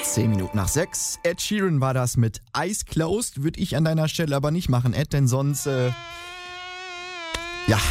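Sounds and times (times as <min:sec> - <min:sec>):
speech: 0:00.2 - 0:06.3, 0:07.7 - 0:07.8
mosquito buzzing: 0:05.3 - 0:07.8.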